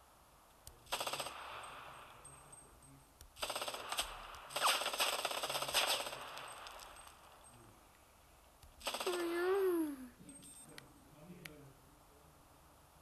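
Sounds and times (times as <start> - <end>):
video game rapid automatic gunfire: 0.9 - 2.3, 3.4 - 7.3, 8.8 - 9.3.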